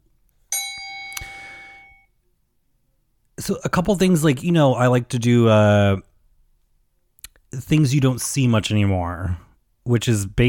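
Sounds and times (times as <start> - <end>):
single bright metallic bell ding: 0.5 - 2.1
speech: 3.4 - 6.1, 7.5 - 10.4.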